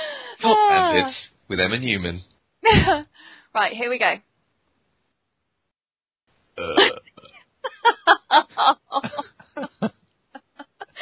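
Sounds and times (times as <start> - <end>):
speech: 0.4 - 4.3, 6.6 - 7.1
loud drawn-out burp: 6.6 - 7.3
laughter: 7.7 - 11.0.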